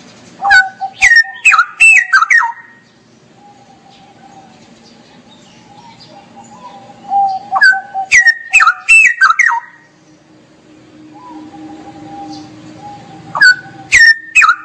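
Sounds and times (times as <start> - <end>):
straw-headed bulbul singing: 0.0 - 14.6.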